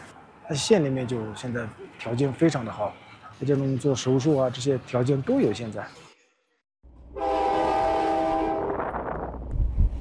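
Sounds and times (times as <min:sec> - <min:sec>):
speech: 0:00.5 - 0:06.1
train horn blast at Andor Railway Station: 0:07.1 - 0:08.9.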